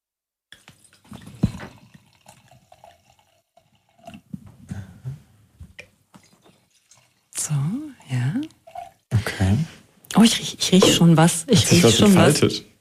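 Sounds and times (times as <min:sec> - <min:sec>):
wine from a screw-cap bottle pouring into a glass: 0:00.6 - 0:04.3, 0:06.2 - 0:09.1
speech: 0:07.5 - 0:08.5, 0:10.2 - 0:12.7.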